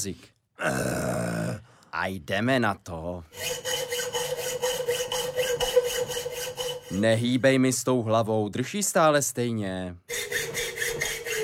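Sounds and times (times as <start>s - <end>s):
speech: 0.0s - 1.4s, 2.0s - 3.8s, 6.9s - 10.2s
thin metal file rasping back and forth: 3.3s - 7.4s, 10.1s - 11.4s.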